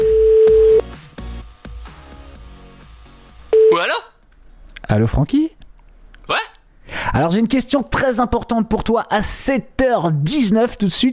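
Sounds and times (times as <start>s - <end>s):
telephone ringing tone on an outgoing call: 0.0s - 0.8s, 3.6s - 3.8s
speech: 4.9s - 5.5s, 7.2s - 11.1s.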